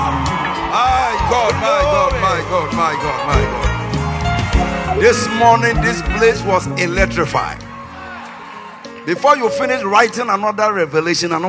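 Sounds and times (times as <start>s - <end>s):
audience shouting and screaming praise: 0.0s - 6.4s, 7.7s - 10.1s
speech: 5.0s - 7.7s, 9.0s - 11.4s.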